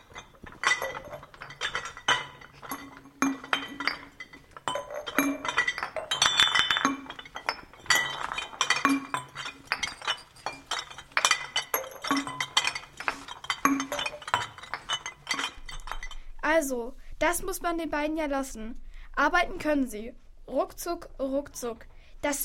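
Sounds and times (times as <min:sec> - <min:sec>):
empty glass bottles of different sizes clinking as they are sorted: 0:00.0 - 0:16.3
speech: 0:16.7 - 0:22.4.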